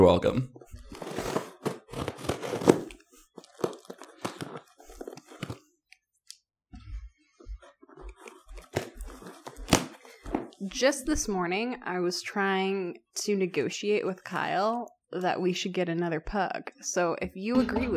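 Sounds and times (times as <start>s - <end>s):
speech: 0.0s - 0.6s, 10.8s - 17.9s
wrapping paper tearing and crinkling as a present is unwrapped: 0.9s - 5.6s, 8.1s - 10.2s.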